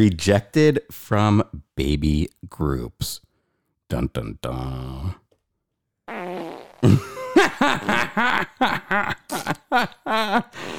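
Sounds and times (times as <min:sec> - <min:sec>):
speech: 0:00.0 - 0:03.2, 0:03.9 - 0:05.2, 0:06.8 - 0:10.7
comical fart sound effect: 0:06.1 - 0:07.0.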